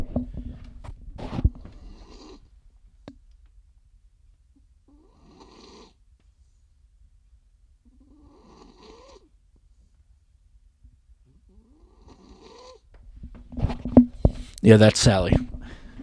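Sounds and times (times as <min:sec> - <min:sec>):
female dog snoring softly: 0:01.3 - 0:02.5, 0:04.9 - 0:06.0, 0:07.9 - 0:09.3, 0:11.4 - 0:12.9
speech: 0:14.6 - 0:15.5.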